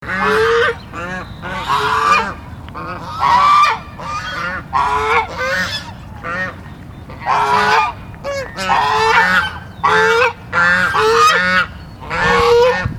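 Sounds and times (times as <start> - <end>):
white geese honking: 0.0 - 12.9.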